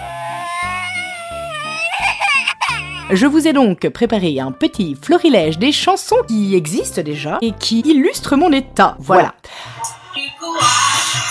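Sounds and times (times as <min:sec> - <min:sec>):
person wailing in a theatrical fake sob: 0:00.0 - 0:03.2
speech: 0:03.1 - 0:09.8.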